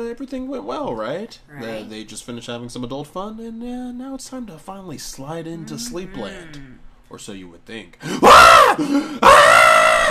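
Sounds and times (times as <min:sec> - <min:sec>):
speech: 0:00.0 - 0:09.9
woman moaning low: 0:05.6 - 0:06.8
woman screaming in her sleep: 0:05.6 - 0:06.8, 0:08.2 - 0:10.1.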